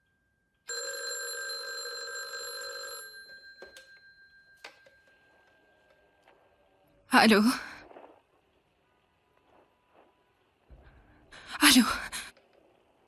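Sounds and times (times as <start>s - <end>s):
telephone ringing: 0.7s - 6.4s
speech: 7.2s - 7.7s.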